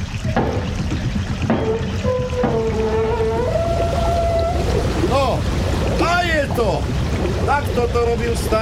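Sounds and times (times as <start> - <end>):
sluice gate wheel turning with heavy clunks: 0.0 - 8.6
steady rush of water: 0.0 - 8.6
sluice gate wheel metal squealing and creaking: 1.4 - 5.2
speech: 6.6 - 8.6.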